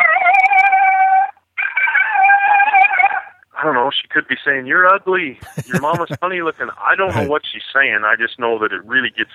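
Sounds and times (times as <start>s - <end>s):
female coyote's yodeling howl: 0.0s - 3.3s
speech: 4.2s - 9.3s
laughter: 5.4s - 6.2s, 7.0s - 7.3s.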